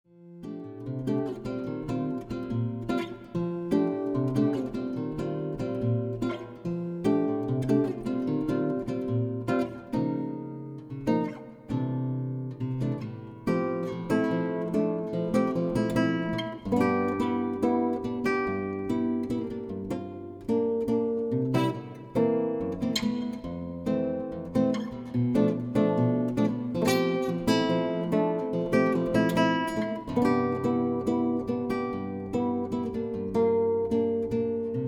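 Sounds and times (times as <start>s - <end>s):
guitar piece: 0.1s - 34.8s.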